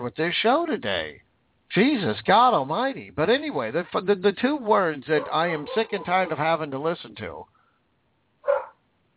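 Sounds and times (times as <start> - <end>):
speech: 0.0 - 7.6
dog barking: 5.2 - 6.4, 8.4 - 8.8.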